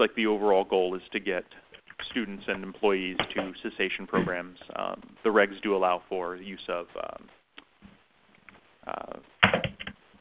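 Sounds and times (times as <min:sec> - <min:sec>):
speech: 0:00.0 - 0:07.4, 0:08.8 - 0:09.3
keyboard typing over a phone line on a conference call: 0:09.4 - 0:10.1.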